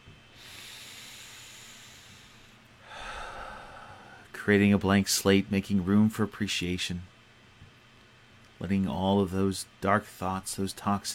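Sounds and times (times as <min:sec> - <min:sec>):
deep breath during a guided meditation: 0:00.4 - 0:04.3
speech: 0:04.4 - 0:07.1, 0:08.6 - 0:11.1.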